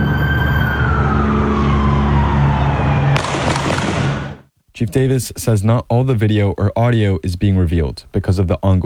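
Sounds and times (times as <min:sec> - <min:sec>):
wailing siren: 0:00.0 - 0:04.4
gunshot through a car window: 0:03.2 - 0:04.5
speech: 0:04.8 - 0:08.8.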